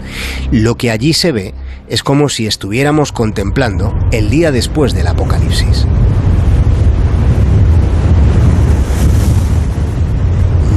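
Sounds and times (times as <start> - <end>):
speech: 0.5 - 6.2
wind blowing through weeds: 2.6 - 10.7.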